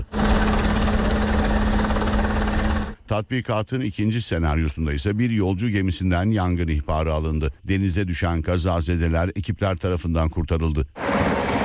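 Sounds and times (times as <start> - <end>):
helicopter rotor and engine drone during a sea search-and-rescue exercise: 0.0 - 3.1
speech: 3.1 - 11.4.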